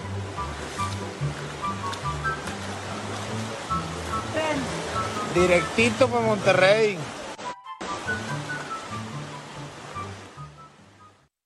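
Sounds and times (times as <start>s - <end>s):
water rushing from natural springs: 0.0s - 11.3s
faint voice murmuring: 4.3s - 5.3s
speech: 5.4s - 7.1s.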